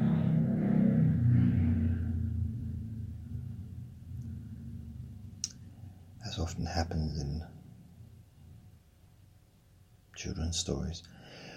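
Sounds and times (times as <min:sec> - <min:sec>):
motorbike engine rumbling past and revving: 0:00.0 - 0:06.4
speech: 0:06.4 - 0:07.6, 0:10.2 - 0:11.2.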